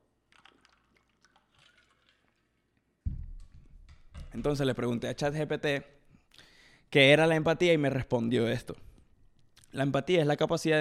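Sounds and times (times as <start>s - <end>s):
soft liquid trickles: 0.2s - 3.0s
person sipping water: 0.3s - 2.8s
speech: 4.3s - 6.0s, 6.9s - 8.8s, 9.7s - 10.7s.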